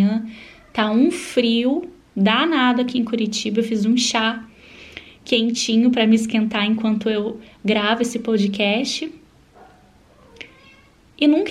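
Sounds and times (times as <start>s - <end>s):
speech: 0.0s - 4.5s, 5.2s - 9.2s, 11.2s - 11.4s
faint hum: 0.0s - 11.4s
cat meowing softly: 0.4s - 0.9s, 9.6s - 11.0s.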